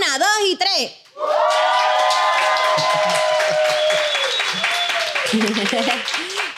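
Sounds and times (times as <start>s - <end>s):
speech: 0.4s - 1.4s, 5.3s - 6.2s
crowd clapping: 1.1s - 6.5s
high whoops: 1.2s - 5.4s
large live crowd shouting and cheering: 1.2s - 5.6s
laughter: 2.6s - 3.9s, 4.5s - 6.5s.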